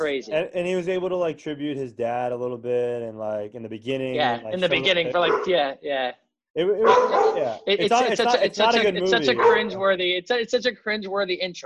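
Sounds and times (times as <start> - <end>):
laughter: 0.0 - 5.5, 6.6 - 10.0
speech: 0.0 - 11.6
dogs yelping and barking excitedly while being fed: 5.2 - 5.5, 6.8 - 7.4, 9.2 - 9.8
dog whining howl while being fed: 6.8 - 7.6.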